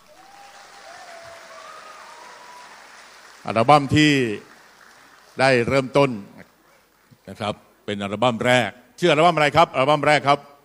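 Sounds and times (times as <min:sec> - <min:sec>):
sizable audience applauding to welcome a guest: 0:00.0 - 0:06.2
speech: 0:03.4 - 0:04.5, 0:05.4 - 0:06.3, 0:07.3 - 0:10.5.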